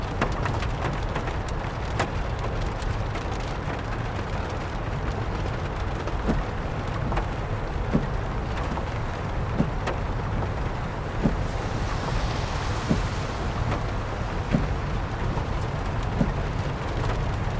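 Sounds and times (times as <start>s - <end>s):
low car engine and road rumble: 0.0s - 17.5s
rain pattering on the roof of a car during a night drive: 0.0s - 17.5s
brief brighter swish: 11.1s - 16.4s.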